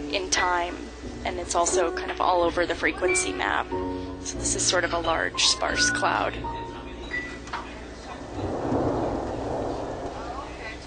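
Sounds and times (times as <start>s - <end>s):
light rain pattering outdoors: 0.0s - 10.8s
speech: 0.1s - 6.6s
faint low rumble: 6.3s - 10.8s.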